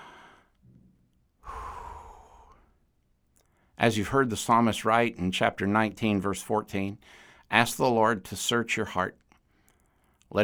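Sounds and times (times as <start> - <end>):
deep breath taken and exhaled in a long sigh: 0.0 - 0.6, 1.4 - 2.8
speech: 3.8 - 9.2.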